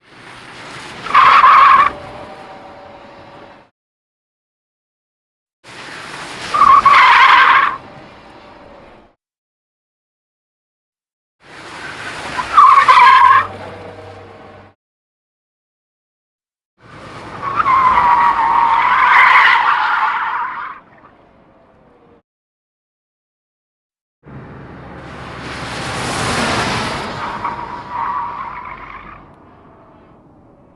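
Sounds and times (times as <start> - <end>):
wet tires skidding on tarmac exterior: 0.0 - 3.6, 5.6 - 9.2, 11.4 - 14.8, 16.8 - 22.2, 24.3 - 30.7.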